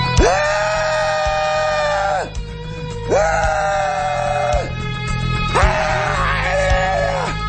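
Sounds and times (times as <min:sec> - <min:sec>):
man screaming helplessly at the sky: 0:00.1 - 0:02.4, 0:03.1 - 0:04.7, 0:05.5 - 0:07.3.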